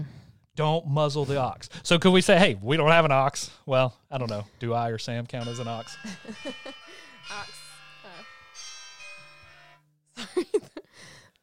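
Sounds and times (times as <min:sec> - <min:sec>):
speech: 0:00.6 - 0:07.6, 0:10.2 - 0:11.2
phone alarm bright electronic melody with buzzy tones: 0:05.4 - 0:09.9
man laughing: 0:06.0 - 0:07.1, 0:10.2 - 0:10.9.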